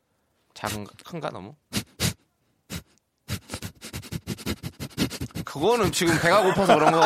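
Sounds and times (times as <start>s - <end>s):
speech: 0.6s - 1.7s, 5.6s - 7.0s
person imitating a dog's dismissive nasal snort: 1.7s - 5.6s
laughter: 4.2s - 7.0s.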